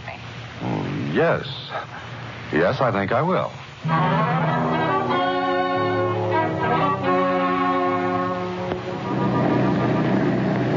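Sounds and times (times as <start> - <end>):
speech: 0.6 - 4.5
airplane engine droning in flight to Chicago: 3.8 - 10.7.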